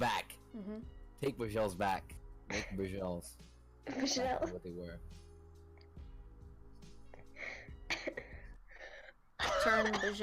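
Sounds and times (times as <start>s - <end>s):
speech: 0.0s - 5.2s, 9.6s - 10.2s
person coughing quietly and roughly: 2.5s - 2.9s, 7.9s - 8.4s, 9.4s - 10.2s.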